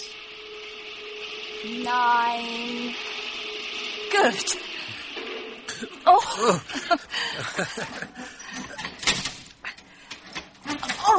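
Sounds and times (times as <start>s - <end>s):
speech: 1.6s - 3.2s, 4.1s - 5.0s, 6.0s - 8.4s
laughter: 5.7s - 9.0s
lift door sliding and jamming with a grinding mechanical whir: 7.6s - 11.1s.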